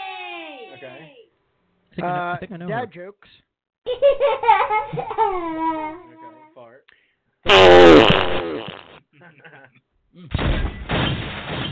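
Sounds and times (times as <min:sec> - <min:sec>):
speech: 0:02.0 - 0:11.6
sputtering fart sound effect: 0:07.5 - 0:09.0.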